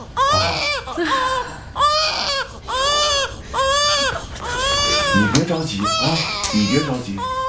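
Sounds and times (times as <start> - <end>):
hungry infant crying: 0.0 - 7.4
speech: 5.4 - 7.4.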